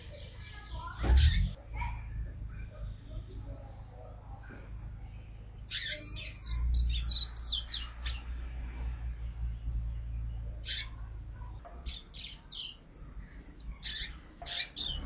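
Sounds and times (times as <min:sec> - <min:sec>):
double-collared seedeater giving high chirps and twittered phrases: 0:00.0 - 0:01.6, 0:05.0 - 0:08.4, 0:09.4 - 0:15.0
loud steady low droning hum: 0:00.0 - 0:11.6
speech: 0:01.2 - 0:01.4.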